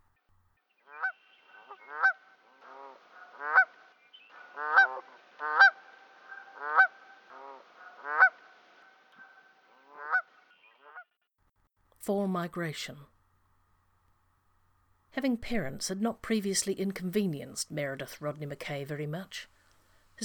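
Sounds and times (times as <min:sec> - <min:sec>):
geese honking: 0:00.8 - 0:11.0
speech: 0:12.0 - 0:13.1, 0:15.2 - 0:19.6.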